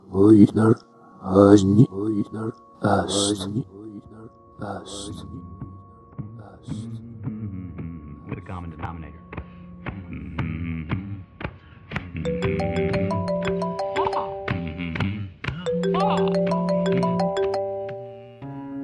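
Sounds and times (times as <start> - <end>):
speech: 0.2 - 3.8, 4.6 - 5.5, 6.6 - 7.0, 8.4 - 9.2
mobile phone ringing with a bright electronic melody: 12.3 - 14.8, 15.6 - 18.2.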